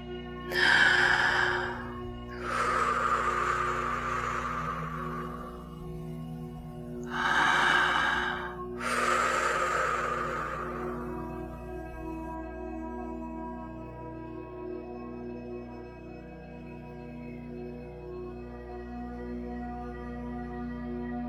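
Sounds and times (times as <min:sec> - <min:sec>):
steady low drone: 0:00.0 - 0:21.2
slow deep breaths with long exhales: 0:00.5 - 0:12.3.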